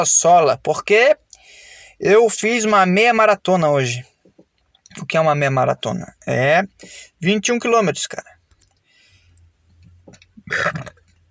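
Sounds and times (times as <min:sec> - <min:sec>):
speech: 0:00.0 - 0:01.2, 0:02.0 - 0:04.1, 0:04.9 - 0:08.4, 0:10.5 - 0:11.0
loud gurgling burp: 0:10.4 - 0:11.2.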